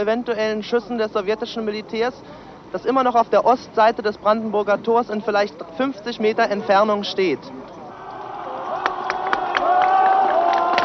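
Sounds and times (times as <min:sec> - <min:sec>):
speech: 0:00.0 - 0:07.8
outdoor crowd of demonstrators cheering: 0:07.9 - 0:10.8
outdoor crowd of demonstrators clapping: 0:08.7 - 0:10.8.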